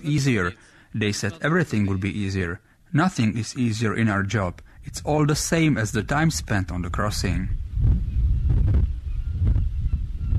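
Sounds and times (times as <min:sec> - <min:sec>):
speech: 0:00.0 - 0:07.9
strong wind across the deck of a ferry from Calais to Dover: 0:04.7 - 0:10.3.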